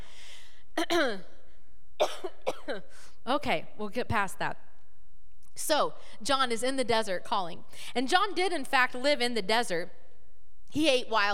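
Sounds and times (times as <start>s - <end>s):
speech: 0.8s - 1.3s, 2.7s - 4.6s, 5.6s - 10.0s, 10.7s - 11.3s
raspy coughing from a tickle in the throat: 2.0s - 2.9s.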